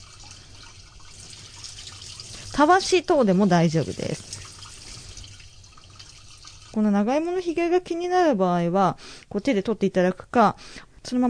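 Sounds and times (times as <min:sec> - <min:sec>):
running tap water splashing as a Chinese yam is washed under the faucet: 0:00.0 - 0:07.8
speech: 0:02.6 - 0:04.3, 0:06.8 - 0:11.2.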